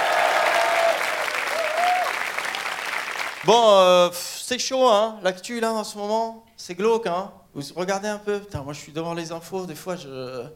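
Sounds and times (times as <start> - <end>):
audience clapping loudly: 0.0 - 3.6
speech: 3.4 - 10.5.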